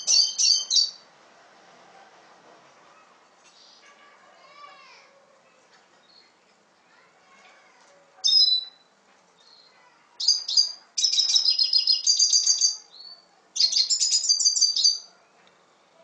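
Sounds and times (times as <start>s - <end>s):
red siskin twittering song with buzzy chattering: 0.0s - 1.0s, 6.0s - 6.4s, 8.2s - 15.2s.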